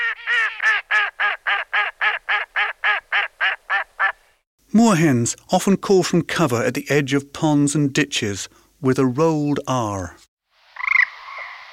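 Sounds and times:
female mallard duck quacking: 0:00.0 - 0:04.2
speech: 0:04.7 - 0:10.3.

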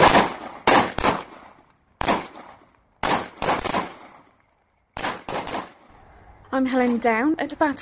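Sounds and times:
pistol shots at an army barracks pistol range: 0:00.0 - 0:05.9
speech: 0:06.6 - 0:07.8.

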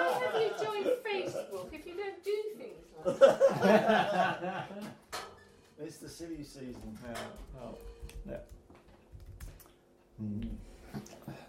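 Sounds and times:
laughter: 0:00.0 - 0:02.0, 0:03.0 - 0:05.0
speech: 0:03.0 - 0:04.9, 0:05.9 - 0:08.6, 0:10.2 - 0:11.0
typing on a Bluetooth keyboard connected to a phone: 0:07.0 - 0:09.7.

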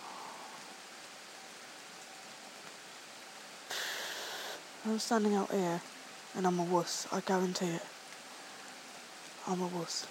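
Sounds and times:
steady rain pouring down outdoors: 0:00.0 - 0:10.0
speech: 0:04.8 - 0:08.0, 0:09.5 - 0:10.0.

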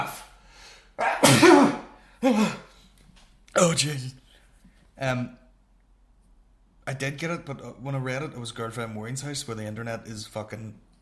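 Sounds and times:
person sneezing: 0:01.0 - 0:02.7
speech: 0:02.2 - 0:02.6, 0:03.6 - 0:04.2, 0:05.0 - 0:05.4, 0:06.9 - 0:10.9.

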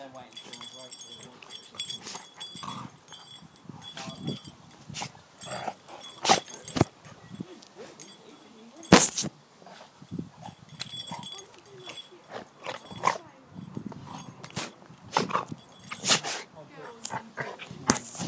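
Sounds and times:
two dogs growling while play-fighting: 0:01.4 - 0:08.1, 0:09.6 - 0:13.3, 0:15.2 - 0:18.1.

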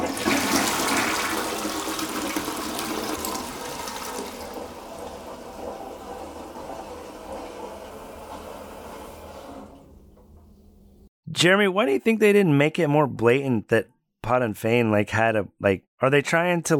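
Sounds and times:
toilet flushing and refilling: 0:00.0 - 0:10.5
speech: 0:11.4 - 0:16.7.

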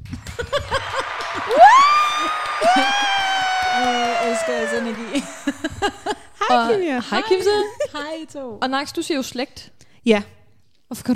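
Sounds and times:
clapping: 0:00.0 - 0:06.2
scattered laughter: 0:00.2 - 0:01.6, 0:04.4 - 0:06.4
loud whoops and cheers from a few voices: 0:00.5 - 0:05.6
speech: 0:04.5 - 0:11.1.

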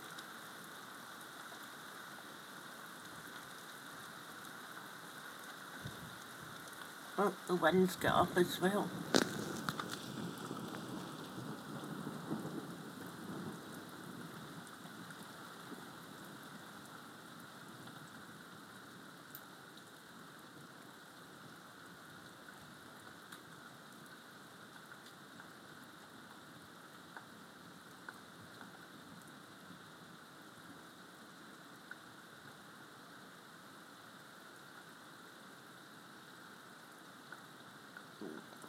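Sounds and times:
heavy rain on surfaces: 0:00.0 - 0:38.6
speech: 0:07.2 - 0:09.1
distant thunder rumble: 0:07.6 - 0:14.8.

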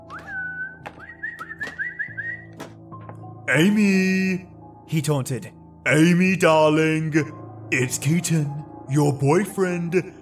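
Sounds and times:
man whistling as if calling a dog: 0:00.0 - 0:02.6
speech: 0:03.5 - 0:10.2.

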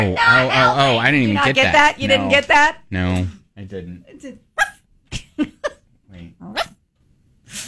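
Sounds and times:
speech: 0:00.0 - 0:04.5
small dog yapping in high-pitched bursts: 0:04.6 - 0:04.8, 0:06.4 - 0:06.8.

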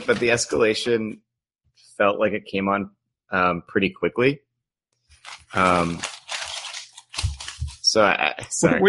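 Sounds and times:
papers being shuffled: 0:00.0 - 0:00.9, 0:05.1 - 0:08.0
speech: 0:00.0 - 0:01.3, 0:02.0 - 0:04.4, 0:05.2 - 0:06.2, 0:07.9 - 0:08.8.

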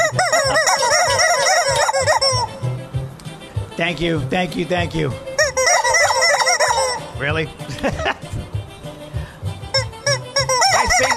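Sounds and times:
chorus of chickens clucking and squawking: 0:00.0 - 0:02.7, 0:05.4 - 0:07.1, 0:09.8 - 0:11.1
speech: 0:03.8 - 0:05.3, 0:07.2 - 0:08.2
laughter: 0:07.6 - 0:08.5.

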